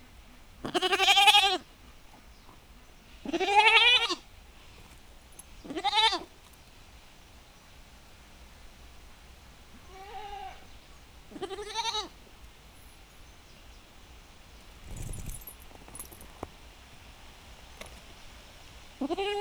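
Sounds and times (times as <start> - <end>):
domestic goat bleating in a farmyard: 0.6 - 1.7, 3.2 - 4.2, 5.6 - 6.3, 9.8 - 10.7, 11.3 - 12.2, 19.0 - 19.3
faint steady rumble of wind: 4.3 - 19.3.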